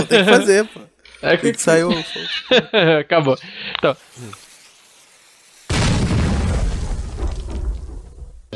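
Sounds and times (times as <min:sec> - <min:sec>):
laughter: 0:00.0 - 0:00.7, 0:01.6 - 0:04.0
speech: 0:00.0 - 0:04.4
TNT explosion with heavy crackling rumble: 0:05.7 - 0:08.5.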